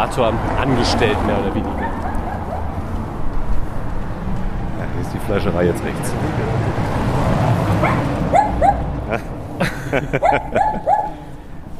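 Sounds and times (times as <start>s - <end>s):
speech: 0.0s - 2.0s, 5.0s - 6.9s, 7.8s - 8.4s, 9.1s - 10.9s
steady low street rumble: 0.0s - 11.7s
small dog barking behind a gate: 1.8s - 2.8s, 7.8s - 8.9s, 10.2s - 11.2s
laughter: 8.9s - 11.4s.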